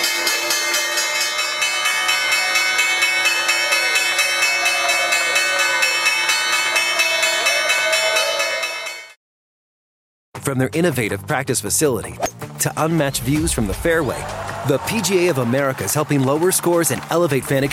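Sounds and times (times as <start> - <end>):
stock exchange closing bell ringing: 0.0 - 9.2
speech: 10.5 - 17.7.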